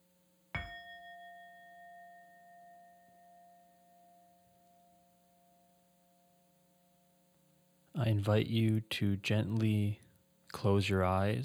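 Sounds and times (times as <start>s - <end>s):
meditation bell struck during a guided meditation: 0.6s - 7.2s
speech: 8.0s - 11.4s.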